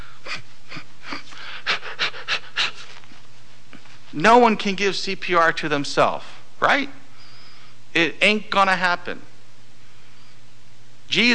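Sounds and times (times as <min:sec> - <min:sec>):
person breathing heavily and theatrically: 0:00.0 - 0:03.3
speech: 0:04.2 - 0:07.0, 0:08.0 - 0:09.3, 0:11.1 - 0:11.3.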